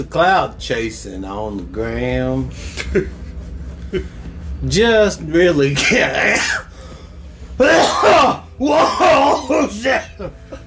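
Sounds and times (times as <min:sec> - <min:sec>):
speech: 0:00.0 - 0:03.2, 0:03.9 - 0:06.7, 0:07.6 - 0:10.6
person coughing: 0:05.8 - 0:06.7, 0:07.6 - 0:10.1.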